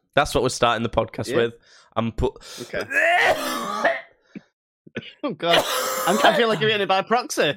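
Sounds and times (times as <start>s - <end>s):
speech: 0.2s - 3.6s, 5.0s - 7.5s
short quiet coughs and huffs: 2.7s - 4.1s, 5.0s - 6.7s
loud raspy throat clearing: 2.8s - 4.1s, 5.0s - 6.6s
laughter: 5.6s - 6.9s.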